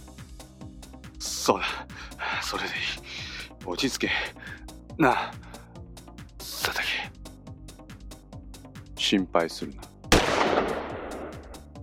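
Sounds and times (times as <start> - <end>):
speech: 1.5 - 4.4, 5.0 - 5.4, 9.1 - 9.9
single gunshot with long echo: 10.1 - 11.6.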